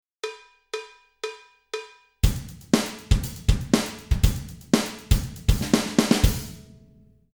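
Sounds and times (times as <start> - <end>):
16 beat drum pattern: 2.2 - 6.6.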